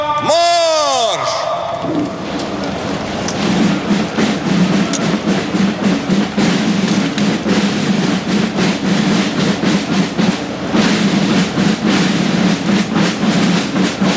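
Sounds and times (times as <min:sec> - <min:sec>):
shouted command by parade commander: 0:00.0 - 0:02.0
troops' boots marching in formation on Red Square military parade: 0:00.0 - 0:14.1.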